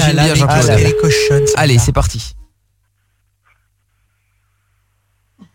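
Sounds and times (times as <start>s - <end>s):
speech: 0.1s - 2.4s
telephone ringback tone as a call is placed: 0.5s - 1.6s.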